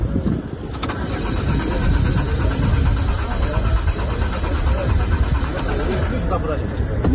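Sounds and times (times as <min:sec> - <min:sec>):
indistinct voices murmuring: 0:00.0 - 0:07.1
car engine cranking without catching: 0:00.6 - 0:06.3.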